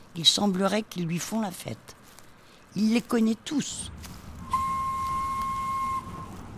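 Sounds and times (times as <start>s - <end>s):
low rumble: 0.0s - 6.5s
speech: 0.2s - 2.0s, 2.8s - 4.1s
distant train whistle as train departs: 4.5s - 6.4s.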